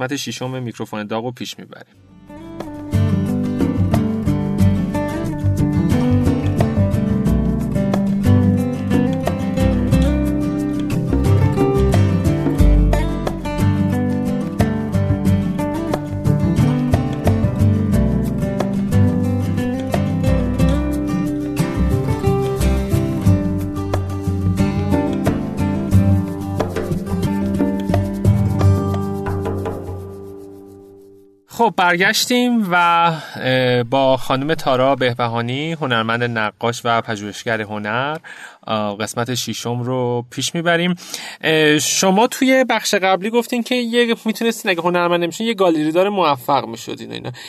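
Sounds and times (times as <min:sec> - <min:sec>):
speech: 0:00.0 - 0:02.2, 0:31.9 - 0:47.4
instrumental music interlude: 0:02.0 - 0:31.5.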